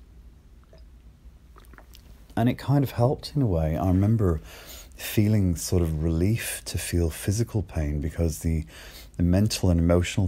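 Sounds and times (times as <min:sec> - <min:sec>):
low steady hum: 0:00.0 - 0:10.2
person slurping and swallowing coffee: 0:01.5 - 0:02.4
speech: 0:02.4 - 0:10.2.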